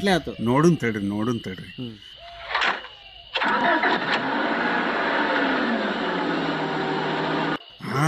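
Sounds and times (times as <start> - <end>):
speech: 0.0 - 2.2
car engine starting after repair and running: 3.4 - 7.6.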